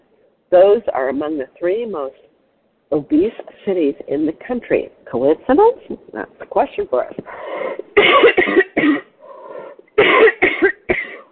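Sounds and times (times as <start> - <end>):
speech: 0.5 - 2.3, 2.9 - 9.0
person coughing from a tickle in the throat: 7.8 - 9.1, 10.0 - 11.3.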